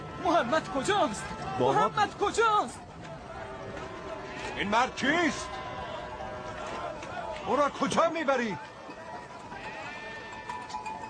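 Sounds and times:
speech: 0.3s - 2.9s, 4.6s - 5.6s, 7.4s - 8.7s
flock of fat sheep bleating: 3.8s - 7.0s, 9.4s - 10.8s.

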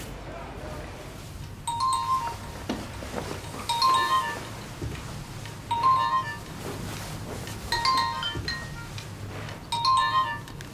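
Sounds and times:
telephone ringing with a bright electronic trill: 1.7s - 5.0s, 5.5s - 6.8s, 7.7s - 10.7s.

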